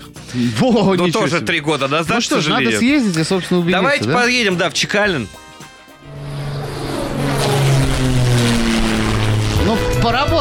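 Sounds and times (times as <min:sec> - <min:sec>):
speech: 0:00.3 - 0:05.4, 0:10.1 - 0:10.3
propeller biplane engine droning: 0:02.8 - 0:10.3.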